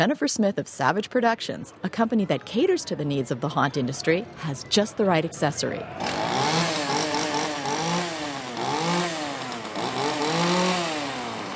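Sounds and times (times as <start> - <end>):
speech: 0.0 - 6.5
chainsaw engine revving: 6.0 - 11.5.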